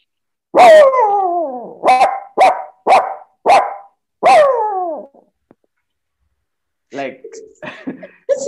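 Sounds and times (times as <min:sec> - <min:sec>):
person imitating a dog barking: 0:00.6 - 0:05.2.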